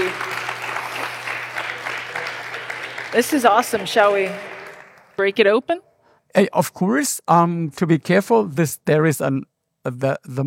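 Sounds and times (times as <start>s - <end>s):
audience applauding at a beer masterclass: 0.0s - 5.3s
speech: 3.2s - 4.5s, 5.2s - 10.4s.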